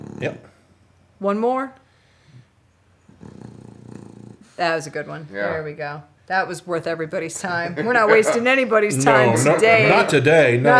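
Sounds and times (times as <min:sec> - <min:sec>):
dog snoring with raspy rumbling snore: 0:00.0 - 0:00.6, 0:03.1 - 0:05.6
speech: 0:00.2 - 0:00.5, 0:01.2 - 0:01.8, 0:04.6 - 0:10.7
laughter: 0:07.4 - 0:10.2.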